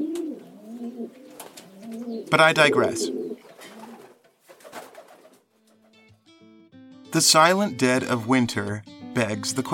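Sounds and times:
pigeons cooing: 0.0s - 5.9s
speech: 2.3s - 3.2s, 7.2s - 9.7s.

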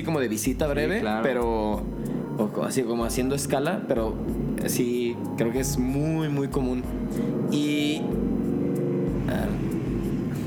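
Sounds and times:
speech: 0.0s - 8.4s
large old car passing by outside: 3.3s - 10.4s.

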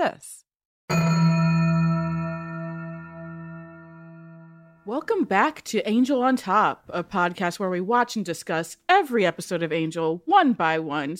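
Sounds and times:
speech: 0.0s - 1.4s, 4.8s - 11.1s
bell ringing: 0.9s - 4.9s.

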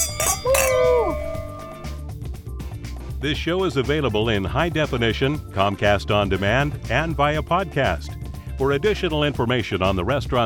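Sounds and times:
glasses clinking in a toast: 0.0s - 2.0s
speech: 3.2s - 10.4s.

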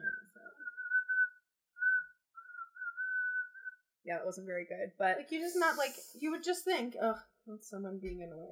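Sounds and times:
person whistling a thin steady tone: 0.0s - 3.8s
speech: 4.1s - 8.5s.

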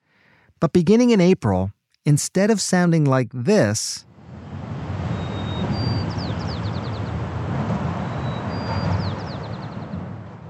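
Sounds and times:
speech: 0.6s - 4.1s
constant loud roar of traffic: 4.1s - 10.4s
sparrow singing: 5.1s - 7.3s, 8.0s - 9.9s.

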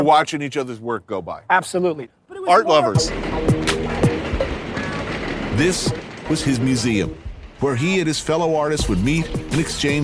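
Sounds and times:
speech: 0.0s - 3.6s, 5.6s - 10.0s
train rumbling past: 2.9s - 10.0s.

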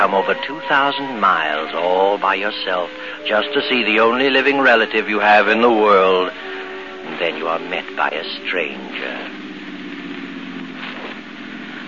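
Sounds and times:
speech: 0.0s - 9.4s
car engine humming on a tree-lined driveway: 0.0s - 11.8s
road or gravel noise: 9.8s - 11.8s.

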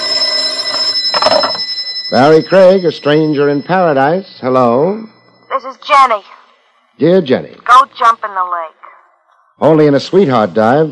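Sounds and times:
telephone ringing with an electric bell tone: 0.0s - 6.1s
speech: 1.2s - 6.4s, 7.0s - 8.8s, 9.6s - 10.9s.

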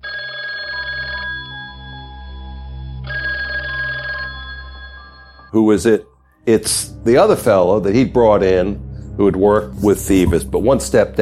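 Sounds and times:
telephone ringing with an electronic trill: 0.0s - 2.3s, 3.0s - 5.5s
speech: 5.5s - 11.2s.

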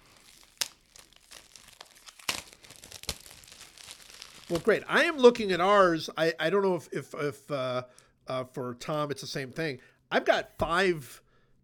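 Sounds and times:
shrink wrap crinkling on trading card packs: 0.0s - 5.6s
speech: 4.5s - 11.2s.

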